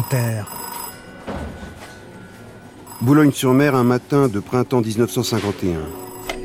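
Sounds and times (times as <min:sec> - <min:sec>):
speech: 0:00.0 - 0:00.6, 0:03.0 - 0:06.1
telephone ringing at a boarding school in Boulogne-sur-Mer: 0:00.0 - 0:01.3, 0:02.0 - 0:04.0, 0:05.8 - 0:06.4.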